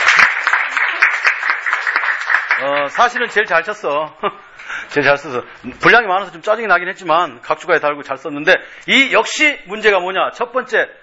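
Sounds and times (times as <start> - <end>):
seated audience applauding at an academic humanities lecture: 0.0 - 3.6
speech: 2.6 - 11.0.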